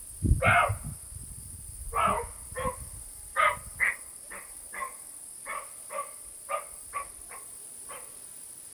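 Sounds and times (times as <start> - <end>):
roe deer Capreolus capreolus barking: 0.4 - 0.8, 2.0 - 2.8, 3.4 - 8.2.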